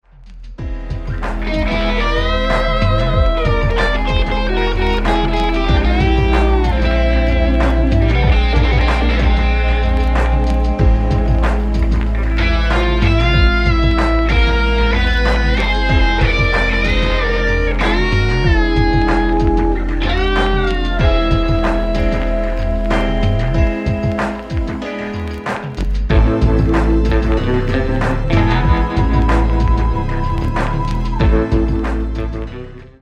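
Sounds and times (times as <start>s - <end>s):
guitar: 0.2s - 32.9s.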